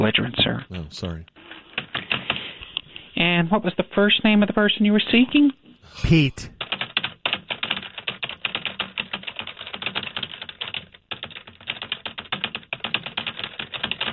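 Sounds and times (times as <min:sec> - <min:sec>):
speech: 0:00.0 - 0:01.4, 0:03.2 - 0:06.5
rapid typing on a computer keyboard: 0:06.6 - 0:14.1.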